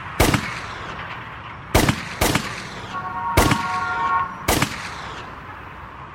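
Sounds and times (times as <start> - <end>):
pistol gunshots: 0.2 - 1.0, 1.7 - 5.3.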